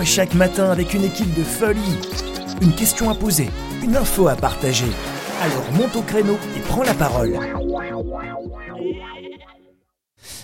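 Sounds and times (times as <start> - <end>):
speech: 0.0 - 9.1
sheep bleating: 1.6 - 5.2, 8.8 - 9.6.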